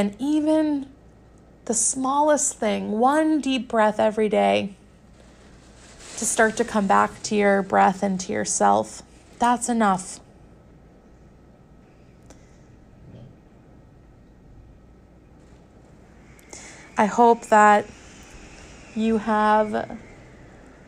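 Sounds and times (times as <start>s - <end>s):
speech: 0.0s - 1.0s, 1.7s - 4.8s, 6.2s - 10.2s, 17.0s - 18.0s, 19.0s - 20.1s
low rumbling wind howling outside: 4.8s - 12.1s, 14.6s - 20.8s.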